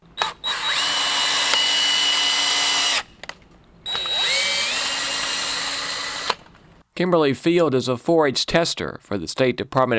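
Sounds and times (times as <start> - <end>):
power drill boring core samples from hay bales: 0.2 - 3.1, 3.8 - 6.5
speech: 7.0 - 9.9.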